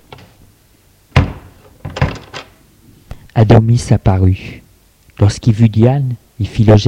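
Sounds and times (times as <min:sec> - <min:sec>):
door latch and handle thunk: 0:01.2 - 0:02.5
speech: 0:03.4 - 0:04.6, 0:05.2 - 0:06.8.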